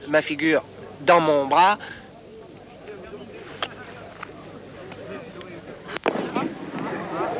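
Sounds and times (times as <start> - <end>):
voices murmuring outdoors: 0.0 - 7.3
speech: 0.1 - 2.0
hissing rush of signal flare: 6.0 - 7.3
red signal flare launching with a sharp bang: 6.0 - 7.3.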